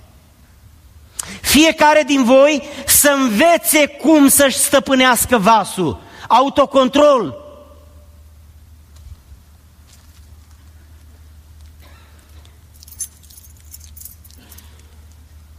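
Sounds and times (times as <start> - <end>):
steady low hum: 0.0 - 15.5
speech: 1.5 - 7.4
keys jangling and clinking: 12.4 - 15.4.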